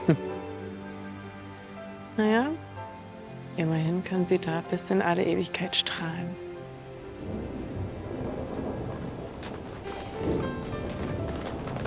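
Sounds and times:
steady rain pouring down: 0.0 - 11.8
speech: 0.1 - 0.4, 2.2 - 2.7, 3.6 - 6.4
low rumble of thunder: 7.1 - 11.8.

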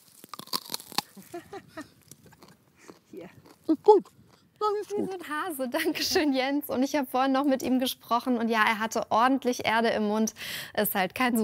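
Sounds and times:
biting into raw vegetable with soil on it: 0.0 - 4.6
crunching as raw vegetable is chewed: 0.0 - 4.6
speech: 3.9 - 11.4.

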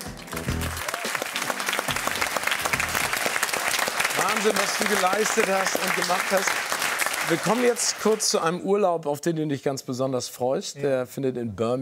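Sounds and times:
audience applause for a former German Sportsman of the Year: 0.0 - 8.5
audience cheering and whoops: 0.4 - 4.6
speech: 4.4 - 11.7.

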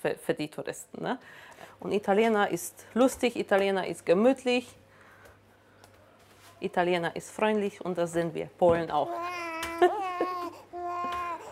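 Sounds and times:
speech: 0.0 - 4.8, 6.6 - 10.3
hungry baby boy crying: 9.1 - 11.5.

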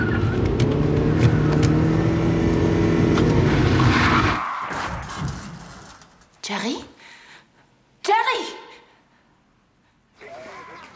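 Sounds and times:
car with failed brakes roaring at speed: 0.0 - 5.2
car tire noise: 0.0 - 6.0
speech: 6.5 - 6.9.

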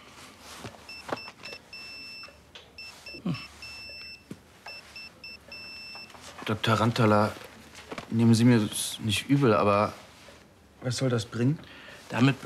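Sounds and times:
faint rustling: 0.0 - 11.0
health monitor alarm two-tone bleeps on a tablet: 0.9 - 6.2
speech: 3.2 - 3.5, 6.5 - 7.4, 8.1 - 10.0, 10.8 - 12.4.

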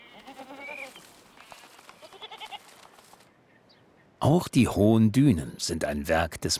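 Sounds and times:
goats bleating outdoors by small streams in a coastal landscape: 0.0 - 1.1, 2.0 - 2.8
speech: 4.2 - 6.5.

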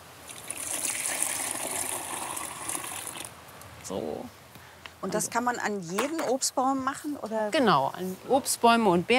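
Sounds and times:
liquid plant manure pouring into water: 0.3 - 3.3
speech: 3.9 - 4.4, 5.0 - 9.1.

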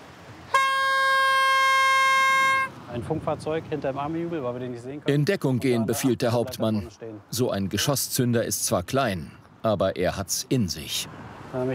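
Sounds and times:
horn blast warning signal at an unexploded-ordnance clearance site: 0.5 - 2.8
speech: 3.0 - 11.7.

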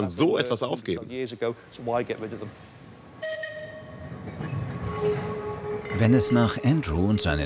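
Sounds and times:
speech: 0.0 - 2.8, 6.0 - 7.4
century-old tram rumbling along its rails: 1.7 - 7.4.

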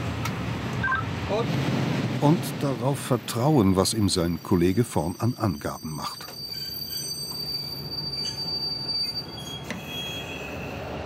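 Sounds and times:
train shunting slowly on rails: 0.0 - 11.0
speech: 1.3 - 6.3
train metallic wheel squeals: 4.2 - 11.0.

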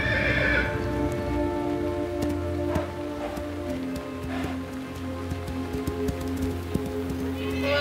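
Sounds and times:
lead stallion whinnying an alarm call: 0.0 - 0.8
steady rainy hiss: 0.0 - 7.8
horse snorts: 2.7 - 4.7.

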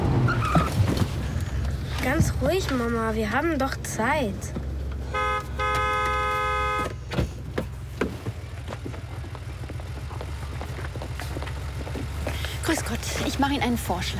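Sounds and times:
car engine idling: 0.0 - 14.1
speech: 2.1 - 4.6, 12.7 - 14.1
car horn honking: 5.0 - 7.1.

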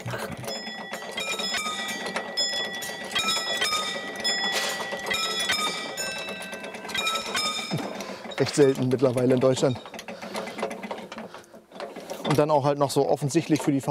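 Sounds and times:
railway level crossing warning bell ringing: 0.4 - 11.2
speech: 8.4 - 10.0, 12.3 - 13.8.

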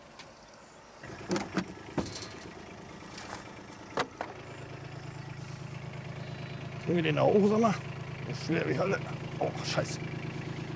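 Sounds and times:
car engine idling: 0.0 - 10.7
sharp clicks and knocks: 1.2 - 4.4
speech: 6.9 - 10.2.

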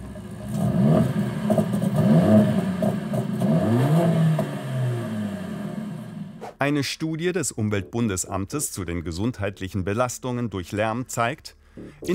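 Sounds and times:
Mercedes-AMG high-performance engine revving: 0.0 - 6.4
speech: 6.6 - 12.1.

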